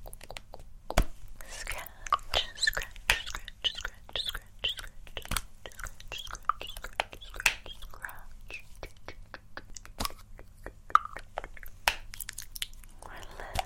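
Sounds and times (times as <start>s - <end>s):
crisp scratching and tapping clicks: 0.0s - 12.4s
faint low hum: 0.0s - 13.6s
soft wet mouth-like sounds: 0.0s - 13.6s.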